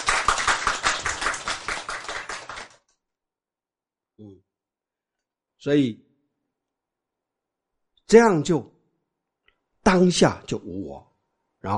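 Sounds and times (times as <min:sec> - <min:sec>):
audience applause at a Buddhist lecture: 0:00.0 - 0:02.8
speech: 0:04.2 - 0:04.5, 0:05.6 - 0:06.0, 0:08.1 - 0:08.7, 0:09.8 - 0:11.7.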